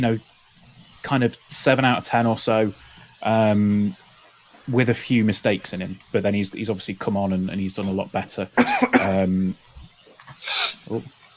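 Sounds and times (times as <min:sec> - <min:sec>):
speech: 0:00.0 - 0:00.3, 0:01.0 - 0:04.0, 0:04.7 - 0:09.7, 0:10.3 - 0:11.2
person sneezing: 0:10.4 - 0:10.9.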